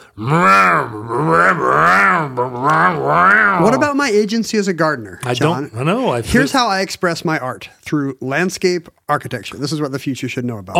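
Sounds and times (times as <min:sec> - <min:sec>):
speech: 0:00.2 - 0:01.7, 0:03.6 - 0:10.7
voice imitating a revving lawnmower engine: 0:00.2 - 0:03.9.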